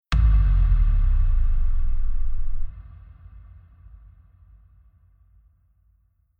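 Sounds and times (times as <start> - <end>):
future bass FX kick bass: 0.2 - 2.7.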